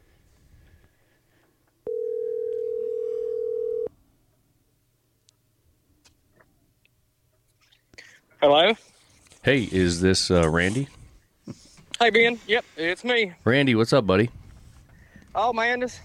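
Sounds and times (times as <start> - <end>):
phone line ringback tone on an outgoing call: 1.9 - 3.9
speech: 8.4 - 8.9, 9.5 - 11.0, 12.0 - 14.4, 15.4 - 16.0.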